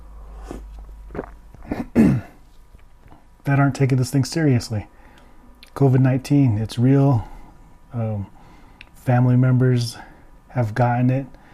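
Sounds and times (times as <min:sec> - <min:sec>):
throat-clearing cough: 0:01.6 - 0:02.4
speech: 0:03.5 - 0:05.0, 0:05.8 - 0:07.3, 0:07.9 - 0:08.4, 0:09.0 - 0:11.4
faint breathy sounds: 0:04.9 - 0:05.6, 0:07.1 - 0:09.0, 0:09.9 - 0:10.5, 0:11.3 - 0:11.5.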